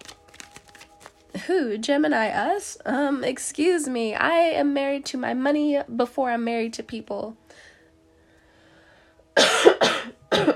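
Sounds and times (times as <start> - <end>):
speech: 1.4 - 7.4
harsh coughs: 9.4 - 10.5.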